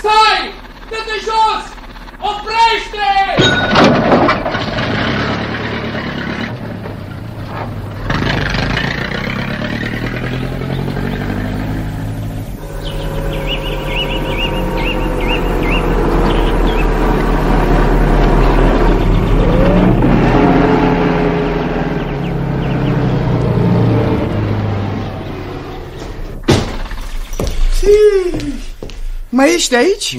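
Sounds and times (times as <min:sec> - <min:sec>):
bus engine idling and revving: 0:00.0 - 0:03.3, 0:04.0 - 0:27.6
metallic clatter: 0:01.6 - 0:09.2
speech: 0:29.4 - 0:30.1.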